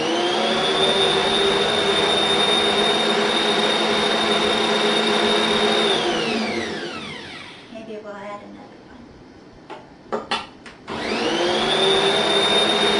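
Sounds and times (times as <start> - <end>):
kitchen mixer blending on its first lowest speed: 0.0 - 7.7, 10.9 - 12.9.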